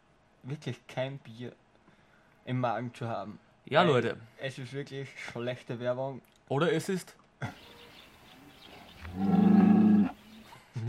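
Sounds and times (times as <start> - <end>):
speech: 0.4 - 1.6, 2.4 - 7.8, 9.2 - 9.4
cow mooing: 9.0 - 10.2.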